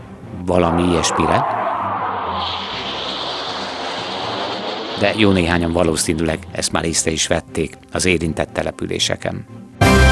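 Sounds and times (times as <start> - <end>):
military jet aircraft roaring overhead: 0.0 - 8.0
speech: 0.5 - 1.6, 2.4 - 2.8, 5.0 - 9.8.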